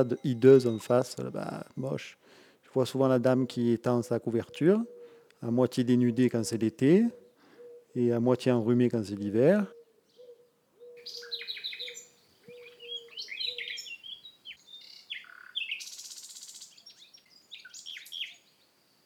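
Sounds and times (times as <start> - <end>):
speech: 0.0 - 7.2, 7.9 - 9.8, 11.1 - 11.3
European robin singing: 0.0 - 19.0
bird cooing: 4.4 - 5.3, 6.0 - 8.0, 9.4 - 13.9.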